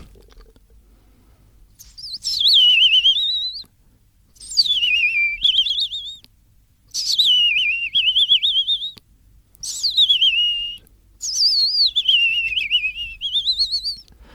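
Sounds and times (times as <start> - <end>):
person whistling an imitation of a European robin's song: 1.8 - 3.7, 4.4 - 6.2, 7.0 - 9.0, 9.6 - 14.1.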